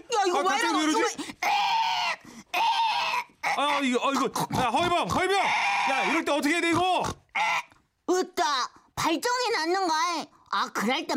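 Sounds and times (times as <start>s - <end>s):
speech: 0.3s - 1.7s, 3.8s - 7.5s, 8.1s - 11.1s
piglet squealing: 0.6s - 7.8s.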